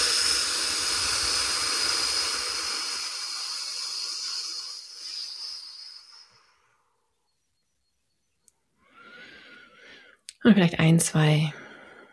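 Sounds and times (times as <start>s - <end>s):
forceful breath blown out hard: 0.0s - 6.8s, 8.8s - 10.1s
speech: 10.4s - 11.6s.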